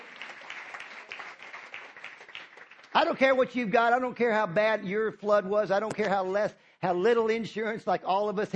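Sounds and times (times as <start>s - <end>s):
crowd applauding: 0.0s - 3.5s
speech: 2.9s - 8.5s.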